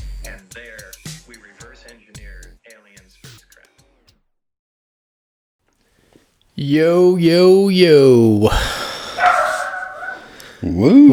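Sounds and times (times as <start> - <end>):
speech: 6.6 - 8.8, 10.7 - 11.1
dog barking into a whiny tone: 8.5 - 11.1.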